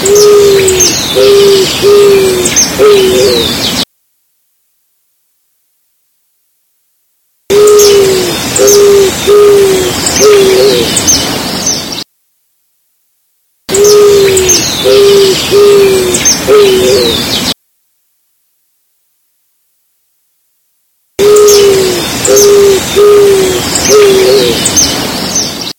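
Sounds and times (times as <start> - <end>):
Zenaida auriculata eared dove calling: 0.0 - 3.8, 7.5 - 11.8, 13.7 - 17.5, 21.2 - 25.6.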